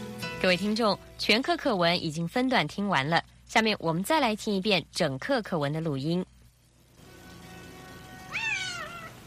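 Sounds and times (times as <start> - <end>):
speech: 0.4 - 6.3
lost cat meowing: 7.2 - 9.2.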